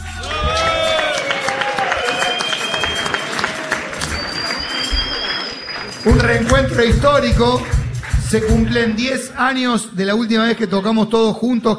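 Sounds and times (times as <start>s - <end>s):
large crowd applauding: 0.0s - 9.2s
shrill whistles: 0.3s - 6.7s
speech: 6.0s - 11.7s.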